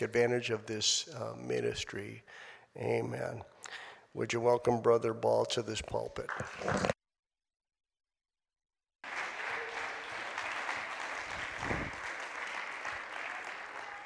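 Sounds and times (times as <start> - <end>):
speech: 0.0 - 6.9
church audience applauding: 9.0 - 14.0.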